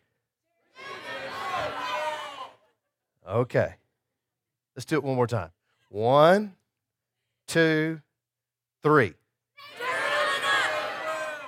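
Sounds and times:
room full of people shouting names at once: 0.7s - 2.7s, 9.6s - 11.4s
speech: 3.3s - 3.8s, 4.8s - 6.6s, 7.5s - 8.1s, 8.8s - 9.8s.

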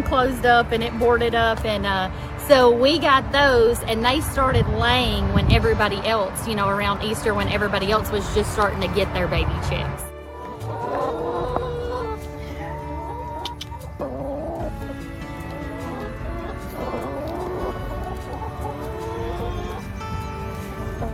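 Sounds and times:
speech: 0.0s - 10.1s
chickens clucking in a chicken tractor: 10.2s - 21.1s.

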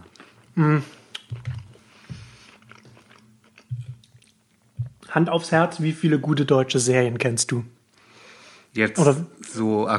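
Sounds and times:
speech: 0.6s - 1.0s, 5.2s - 7.8s, 8.8s - 9.9s
wet chewing and biting food: 1.1s - 4.4s.

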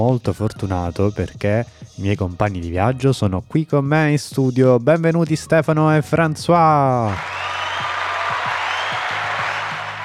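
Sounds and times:
speech: 0.0s - 7.4s
applause from a small group in a studio: 7.0s - 10.0s.

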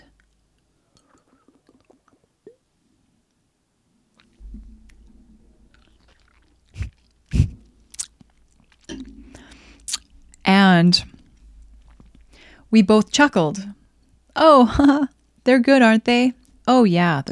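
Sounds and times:
person sipping and swallowing a drink: 0.2s - 2.6s, 4.2s - 10.4s, 11.1s - 12.6s
speech: 10.8s - 11.1s, 12.7s - 13.8s, 14.4s - 17.3s.

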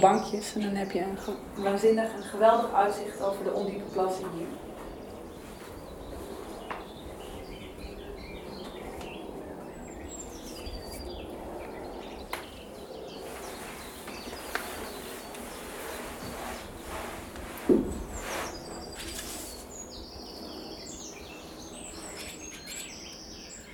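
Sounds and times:
speech: 0.0s - 4.7s
birds chirping and calling at shallow ponds: 0.0s - 23.7s
brief louder rustle or knock: 13.4s - 19.5s.

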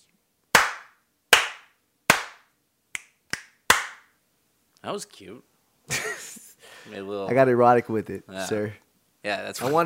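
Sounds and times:
sharp hand slaps: 0.5s - 4.1s
speech: 4.8s - 9.8s.

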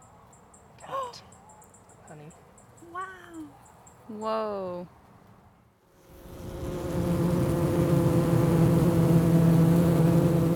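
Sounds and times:
speech: 3.1s - 5.0s
many honeybees buzzing around a hive frame: 6.0s - 10.5s.

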